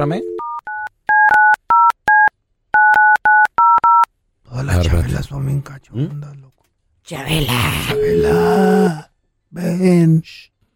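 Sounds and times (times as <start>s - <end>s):
speech: 0.0s - 0.3s, 4.8s - 10.5s
telephone keypad dual-tone dialing beeps: 0.2s - 4.1s.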